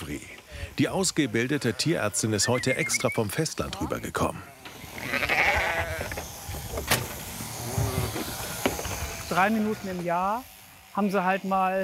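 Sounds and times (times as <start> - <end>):
speech: 0.1 - 4.6, 9.3 - 11.8
Norwegian fjord sheep bleating during shearing: 1.1 - 3.3, 4.4 - 6.2, 7.6 - 10.0
mechanical buzzing: 4.5 - 11.1.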